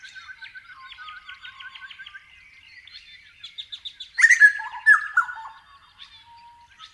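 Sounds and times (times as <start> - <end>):
grey butcherbird song: 0.0 - 6.9.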